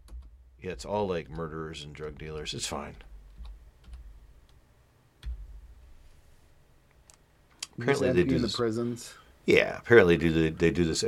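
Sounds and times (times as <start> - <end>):
typing on a computer keyboard: 0.0 - 0.4, 3.4 - 4.1
speech: 0.6 - 3.1, 7.8 - 11.0.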